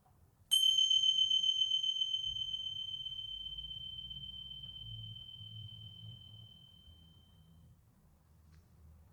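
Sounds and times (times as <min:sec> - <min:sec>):
small meditation bell ringing: 0:00.5 - 0:07.6.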